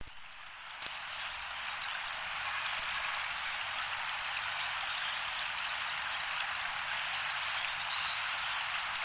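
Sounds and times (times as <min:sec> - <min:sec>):
bird calls in Higashiosaka Japan: 0:00.0 - 0:07.0
steady background hiss: 0:00.0 - 0:09.0.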